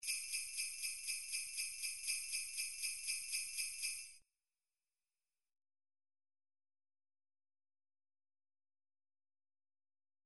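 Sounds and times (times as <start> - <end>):
individual drum sleigh bells: 0.0 - 4.2.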